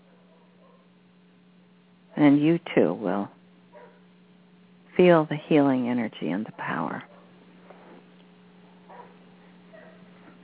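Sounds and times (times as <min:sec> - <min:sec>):
female dog barking: 0:00.0 - 0:00.9, 0:03.7 - 0:04.0, 0:08.6 - 0:10.1
low electrical hum: 0:00.0 - 0:10.4
speech: 0:02.2 - 0:03.4, 0:05.0 - 0:07.1.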